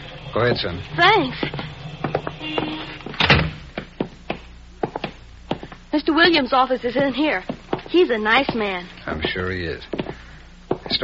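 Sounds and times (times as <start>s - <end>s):
speech: 0.4s - 1.7s, 2.4s - 2.8s, 6.0s - 10.0s
settlement house door shutting with a solid thunk: 3.2s - 3.6s.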